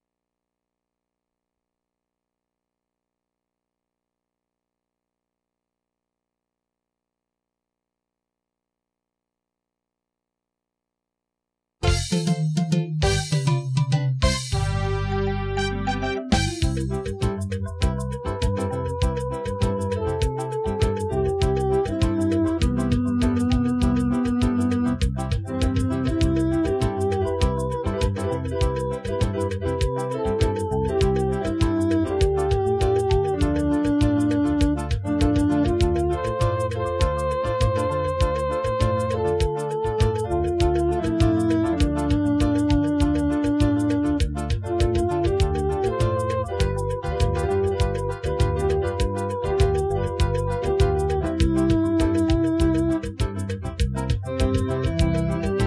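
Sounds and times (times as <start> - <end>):
music: 11.8 - 55.6.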